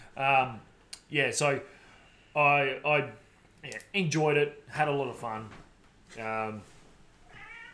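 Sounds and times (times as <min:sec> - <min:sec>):
speech: 0:00.2 - 0:01.8, 0:02.4 - 0:06.7
cat meowing: 0:07.2 - 0:07.7.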